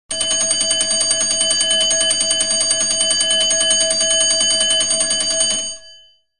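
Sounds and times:
metallic school bell: 0:00.1 - 0:06.2.

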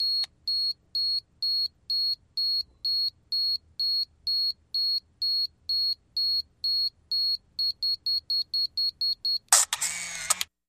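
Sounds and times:
35mm camera beeper: 0:09.1 - 0:10.4
35mm camera shutter clicks: 0:09.5 - 0:10.5.

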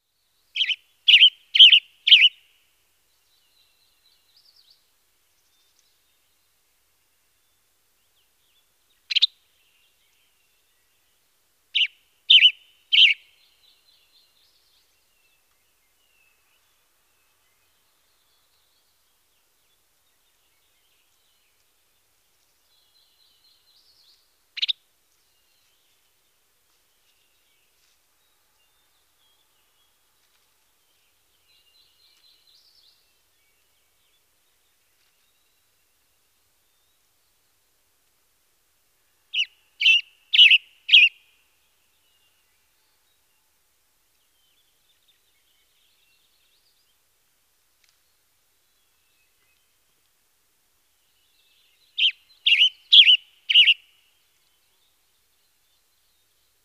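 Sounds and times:
western tanager chirping: 0:00.0 - 0:06.6, 0:07.3 - 0:37.6, 0:39.3 - 0:43.5, 0:51.0 - 0:56.6.

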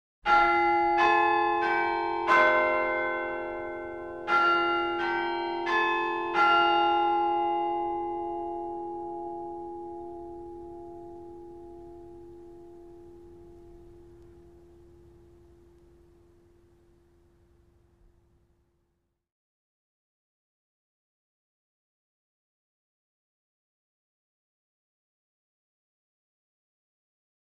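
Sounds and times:
school bell: 0:00.3 - 0:17.6.

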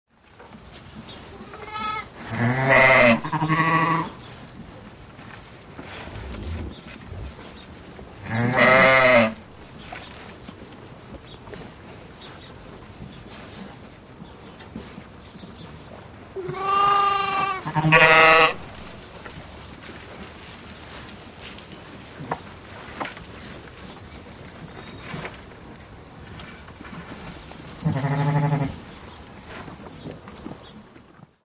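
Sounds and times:
group of sheep bleating: 0:01.4 - 0:04.1, 0:08.2 - 0:09.4, 0:16.4 - 0:18.6, 0:27.8 - 0:28.7.

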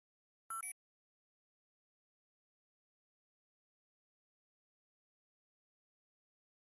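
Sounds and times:
electronic double beep of a flash: 0:00.5 - 0:00.7.

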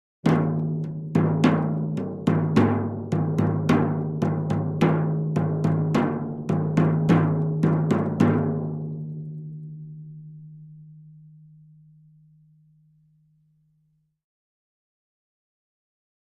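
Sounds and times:
thin tom drum rhythm: 0:00.2 - 0:09.6.

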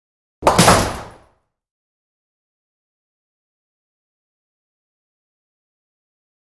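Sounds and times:
bowling ball hits: 0:00.4 - 0:01.3.

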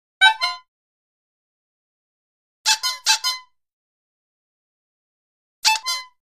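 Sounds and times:
toy horn honks: 0:00.2 - 0:00.7, 0:02.7 - 0:03.5, 0:05.6 - 0:06.2.

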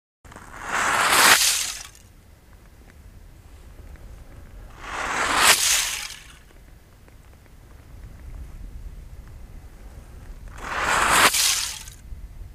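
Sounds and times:
medium-sized ice scraping: 0:00.3 - 0:02.1, 0:04.7 - 0:06.6, 0:10.5 - 0:12.0.

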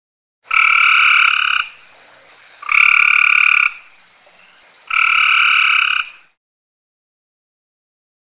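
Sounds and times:
frog giving long buzzy nasal croaks: 0:00.5 - 0:06.4.

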